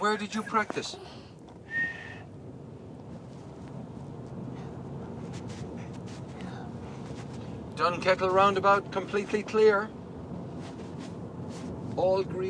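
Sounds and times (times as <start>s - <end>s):
speech: 0.0s - 1.3s, 7.8s - 10.0s, 12.0s - 12.4s
steady low rumble: 0.0s - 12.4s
person whistling a high note: 1.7s - 2.2s.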